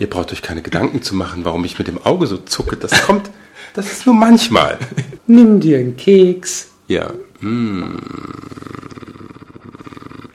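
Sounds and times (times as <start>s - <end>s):
speech: 0.0s - 8.9s
person imitating a purring cat with their voice: 7.3s - 10.3s.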